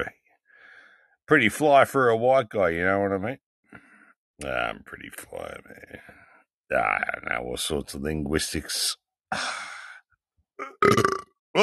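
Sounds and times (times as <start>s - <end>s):
speech: 1.3s - 3.4s, 4.4s - 9.8s, 10.6s - 11.6s
person burping loudly: 10.6s - 11.6s.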